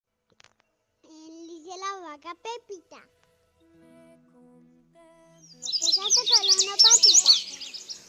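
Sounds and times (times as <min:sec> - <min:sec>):
speech: 0:02.1 - 0:03.2, 0:05.6 - 0:07.7
small bird chirping in high tweets: 0:05.4 - 0:08.0.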